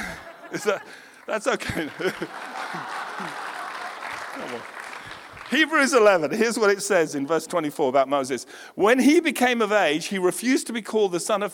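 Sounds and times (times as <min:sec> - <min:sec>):
laughter: 0:00.0 - 0:05.5
crowd applause: 0:00.0 - 0:06.7
speech: 0:00.5 - 0:03.5, 0:04.4 - 0:04.8, 0:05.5 - 0:11.5.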